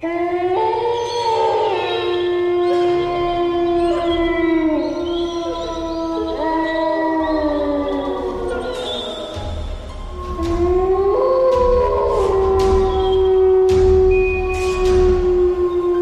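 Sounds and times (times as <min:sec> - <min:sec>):
wolves howling inside a tomb: 0:00.0 - 0:16.0.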